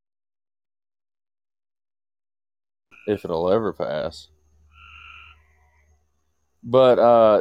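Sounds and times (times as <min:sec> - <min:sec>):
frogs croaking: 0:02.9 - 0:07.3
speech: 0:03.0 - 0:04.4, 0:06.6 - 0:07.3.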